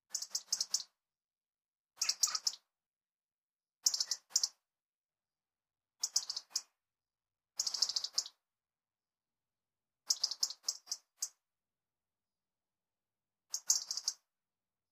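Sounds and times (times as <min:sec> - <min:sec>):
European robin Erithacus rubecula giving sharp high clicking ticks: 0:00.1 - 0:01.0, 0:02.0 - 0:02.7, 0:03.8 - 0:04.6, 0:06.0 - 0:06.7, 0:07.6 - 0:08.4, 0:10.1 - 0:11.4, 0:13.5 - 0:14.2.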